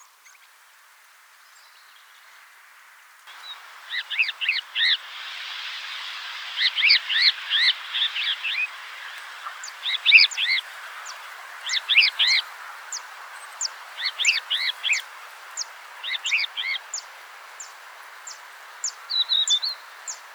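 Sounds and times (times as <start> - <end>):
crested lark calling: 3.3 - 20.3.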